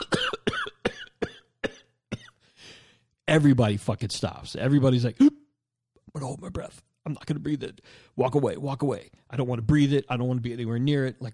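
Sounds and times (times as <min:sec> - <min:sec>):
person imitating a deep hacking cough: 0:00.0 - 0:02.4
speech: 0:03.3 - 0:05.4, 0:06.2 - 0:11.3.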